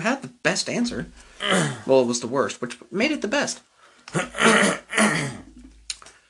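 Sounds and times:
speech: 0.0 - 5.4
raspy coughing and throat clearing: 1.4 - 1.9, 4.1 - 5.8.

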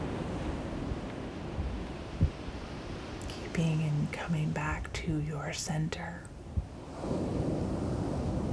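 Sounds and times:
ocean waves breaking in a low rumbling roar: 0.0 - 4.4, 6.4 - 8.5
faint breezy hiss over the surf: 0.0 - 8.5
speech: 3.6 - 6.3.

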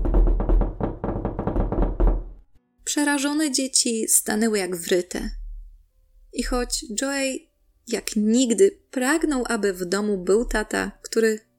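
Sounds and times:
rapid knocking on windows of a house: 0.0 - 2.4
speech: 3.0 - 5.4, 6.3 - 11.5.

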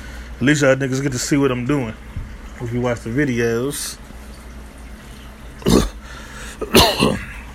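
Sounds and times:
speech: 0.4 - 4.0
loud cough: 5.6 - 6.0, 6.6 - 7.4
rough throat clearing: 5.6 - 6.0, 6.6 - 7.5.

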